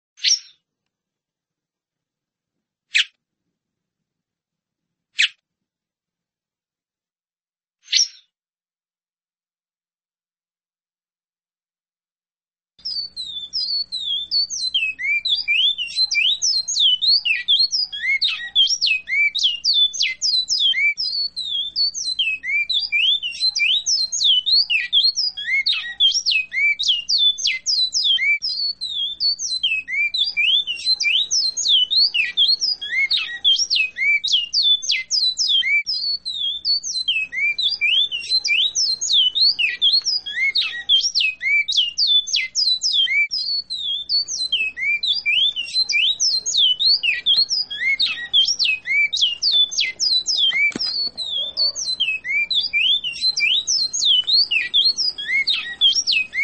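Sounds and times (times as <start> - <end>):
bicudo singing: 12.8 - 56.4.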